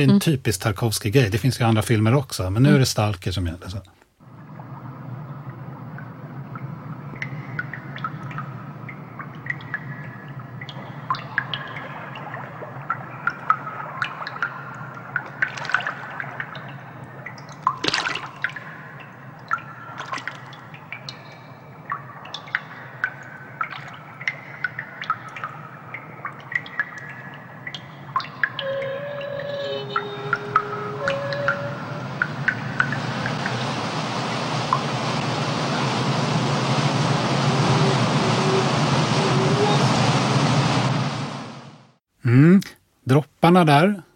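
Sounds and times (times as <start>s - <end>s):
speech: 0.0s - 4.0s, 43.5s - 44.1s
amplified water drips echoing in a reverberant space: 4.1s - 35.3s
eerie drawn-out creaking tones: 4.2s - 42.0s.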